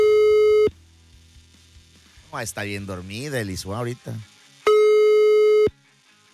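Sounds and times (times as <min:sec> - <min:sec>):
phone call tone while dialing: 0:00.0 - 0:00.7, 0:04.7 - 0:05.7
speech: 0:02.4 - 0:04.3.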